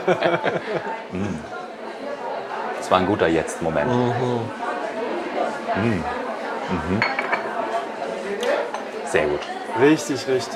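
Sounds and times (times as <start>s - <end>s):
speech: 0.0s - 2.1s, 2.9s - 4.6s, 5.8s - 7.2s, 9.1s - 10.5s
laughter: 0.0s - 3.1s, 3.8s - 7.9s
soft murmuring voices: 0.0s - 10.5s
glasses clinking in a toast: 6.9s - 7.6s
light tableware clatter: 6.9s - 7.6s.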